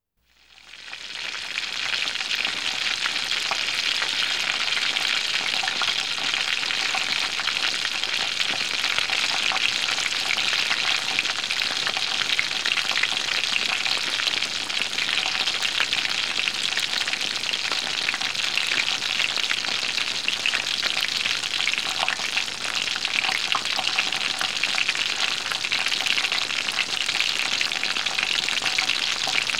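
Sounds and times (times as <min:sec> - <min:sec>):
cooking pan sizzling: 0:00.6 - 0:29.5.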